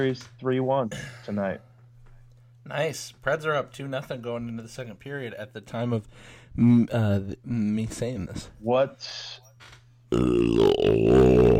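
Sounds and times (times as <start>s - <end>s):
speech: 0.0s - 1.7s, 2.6s - 11.5s
long loud burp against the microphone: 10.1s - 11.5s.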